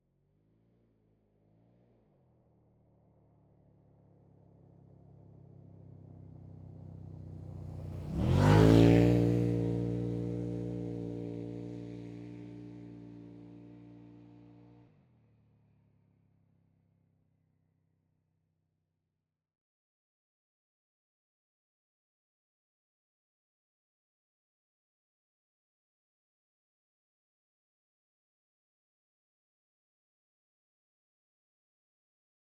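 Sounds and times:
Textron WildCat X off-road vehicle accelerating by, exterior: 0:07.0 - 0:14.8.

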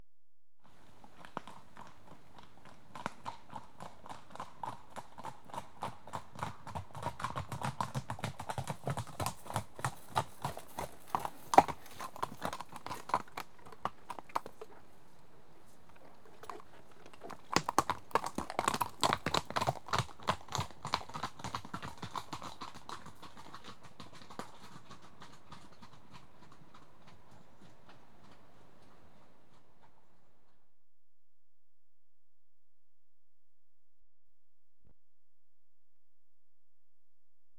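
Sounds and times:
two horses trotting on a rough track: 0:00.7 - 0:30.6.

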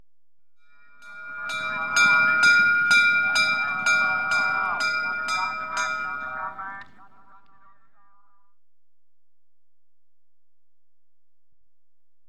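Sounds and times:
bell for end of chukka at polo equestrian event: 0:00.7 - 0:07.1.

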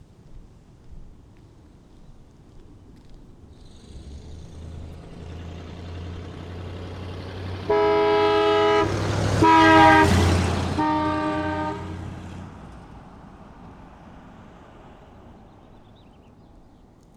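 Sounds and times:
1964 Mercury Montclair engine: 0:03.6 - 0:15.5
1964 Mercury Montclair horns passing with Doppler effect: 0:07.5 - 0:12.4.

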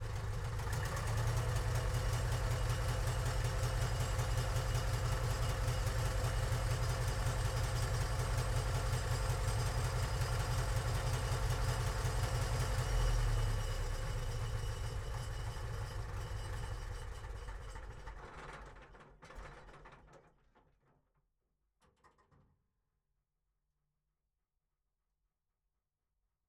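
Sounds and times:
Infanterikanonvagn 103 assault gun rear engine idling, recorded on board: 0:00.1 - 0:17.4.

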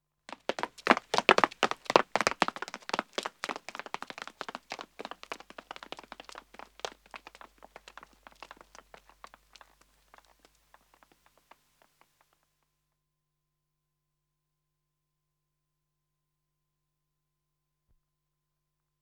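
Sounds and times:
two men running on pavement: 0:00.3 - 0:12.1.

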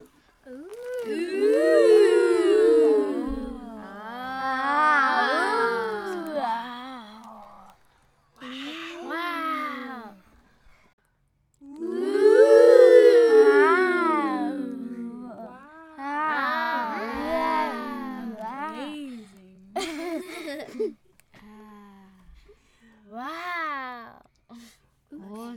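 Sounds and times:
group of children going uhh ahh: 0:00.0 - 0:07.8, 0:08.4 - 0:10.3, 0:11.6 - 0:21.0.

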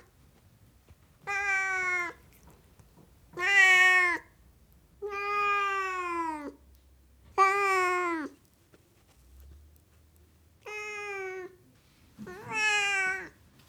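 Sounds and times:
Siamese cat meowing: 0:01.3 - 0:02.2, 0:03.4 - 0:04.3, 0:05.0 - 0:06.6, 0:07.4 - 0:08.4, 0:10.7 - 0:11.5, 0:12.3 - 0:13.4.

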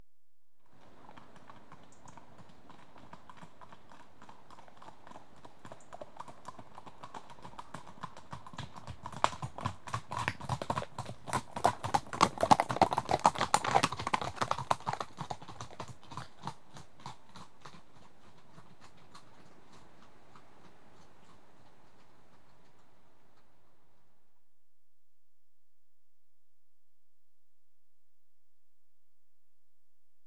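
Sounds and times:
two horses trotting on rough track: 0:00.8 - 0:23.7.

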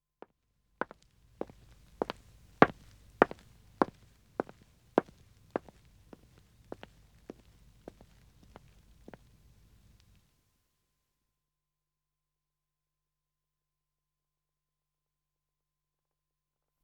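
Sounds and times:
man walking on dead wood: 0:00.8 - 0:09.3.

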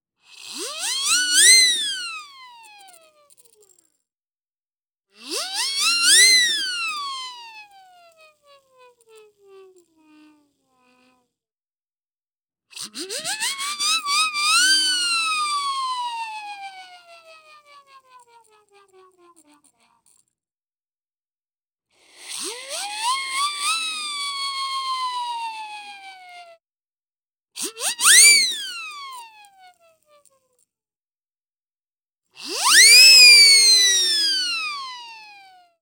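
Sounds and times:
plastic siren whistle: 0:00.6 - 0:02.4, 0:05.2 - 0:07.8, 0:13.1 - 0:16.9, 0:22.7 - 0:26.1, 0:27.6 - 0:29.6, 0:32.4 - 0:35.5.

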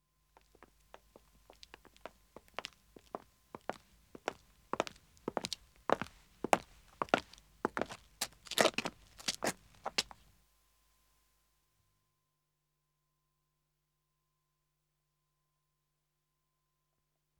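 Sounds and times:
two men's footsteps on pavement: 0:00.4 - 0:10.3.

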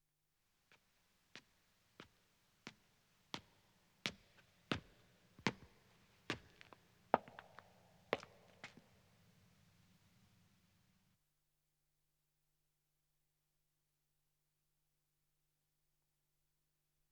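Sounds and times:
footsteps ascending stone stairs with echo: 0:01.4 - 0:09.0.

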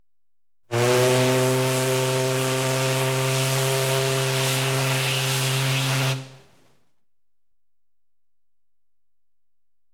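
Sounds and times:
paddle steamer hooter: 0:00.7 - 0:06.6.

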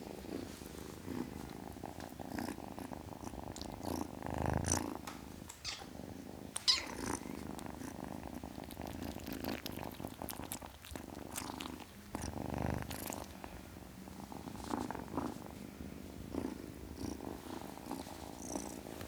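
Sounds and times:
ten-week-old domestic kitten purring: 0:00.0 - 0:19.0.

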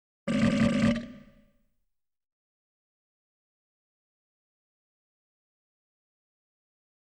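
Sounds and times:
burp: 0:00.3 - 0:01.6.

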